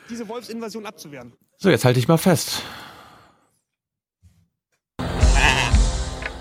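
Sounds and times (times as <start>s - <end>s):
speech: 0.1s - 2.9s
sheep bleating: 5.2s - 6.0s.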